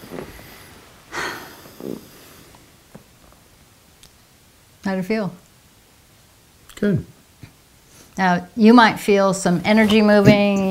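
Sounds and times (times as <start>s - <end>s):
big deep breath: 0.0s - 2.6s
speech: 4.9s - 5.4s, 6.8s - 7.2s, 8.2s - 10.6s.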